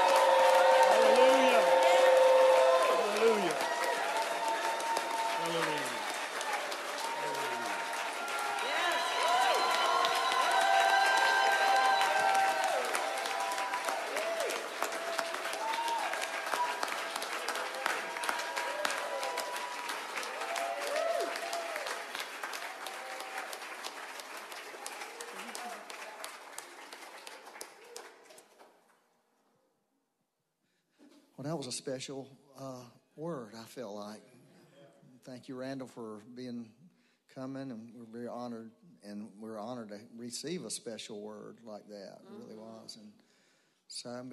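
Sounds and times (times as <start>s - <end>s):
large audience whooping and shouting in worship: 0.0s - 23.8s
large audience clapping in worship: 0.0s - 29.0s
speech: 31.6s - 34.3s, 35.3s - 36.8s, 37.4s - 43.2s, 43.9s - 44.3s.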